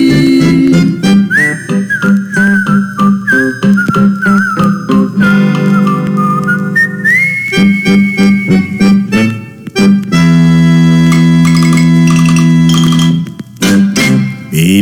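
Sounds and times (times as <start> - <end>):
whistled melody: 0.0 - 14.5
bouncy waltz instrumental accompaniment: 0.0 - 14.7.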